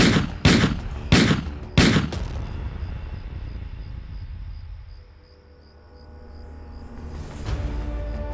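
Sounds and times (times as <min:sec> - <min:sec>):
rapid gunshots with booming echo: 0:00.0 - 0:02.6.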